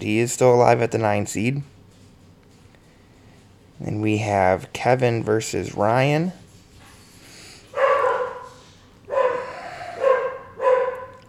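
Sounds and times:
speech: 0.0 - 1.8, 3.8 - 6.4
dogs barking: 7.7 - 11.2.

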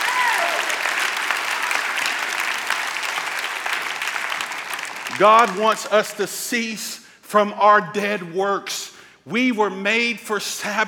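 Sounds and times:
audience clapping hands in praise: 0.0 - 5.9
speech: 5.2 - 10.8.

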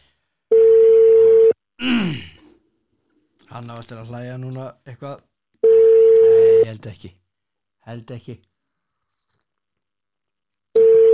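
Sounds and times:
telephone ringback tone while a call is being placed: 0.5 - 1.6, 5.6 - 6.6, 10.8 - 11.1
short groan-like vocal sound with falling pitch: 1.8 - 2.4
speech: 3.6 - 5.3, 6.3 - 7.2, 7.8 - 8.5.

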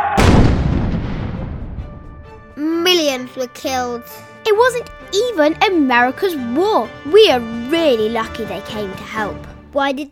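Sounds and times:
heavy artillery blast from World War I trench warfare: 0.2 - 2.5
speech: 3.3 - 10.1.

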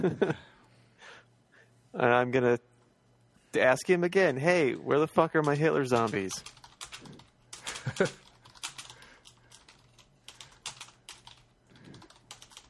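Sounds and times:
speech: 0.0 - 0.5, 2.0 - 2.7, 3.6 - 7.2, 7.8 - 8.2
typing on a computer keyboard: 5.4 - 12.6.

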